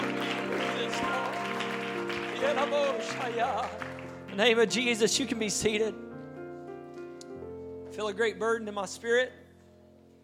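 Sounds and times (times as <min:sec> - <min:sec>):
crowd clapping: 0:00.0 - 0:04.9
speech: 0:02.5 - 0:06.0, 0:08.0 - 0:09.4.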